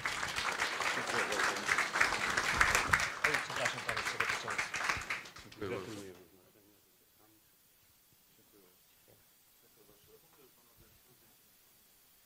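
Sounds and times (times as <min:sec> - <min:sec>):
room full of people applauding for the school director: 0:00.0 - 0:05.7.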